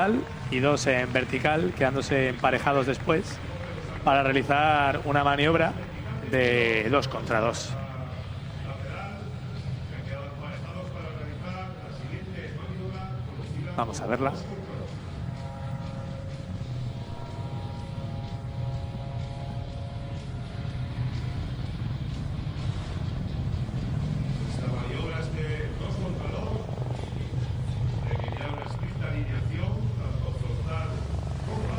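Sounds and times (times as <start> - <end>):
speech: 0.0 - 7.8, 13.8 - 14.6
several helicopters passing: 0.0 - 31.7.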